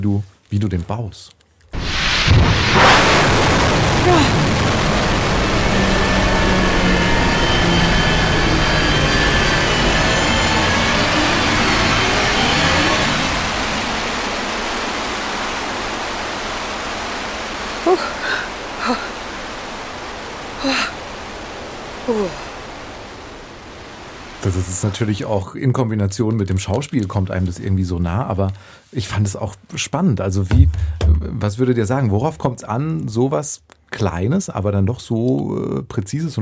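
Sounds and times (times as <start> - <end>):
speech: 0.0 - 1.4, 4.0 - 4.5, 22.1 - 22.4, 24.5 - 36.4
sharp bangs: 1.8 - 6.1
rocket launch roar: 1.8 - 25.1.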